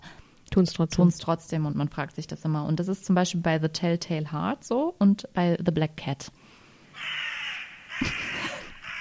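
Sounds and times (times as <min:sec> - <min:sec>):
speech: 0:00.6 - 0:06.4
crow cawing: 0:06.9 - 0:08.9.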